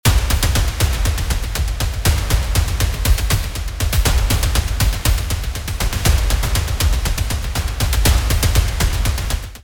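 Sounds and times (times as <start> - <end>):
trailer music loop: 0.0 - 9.6.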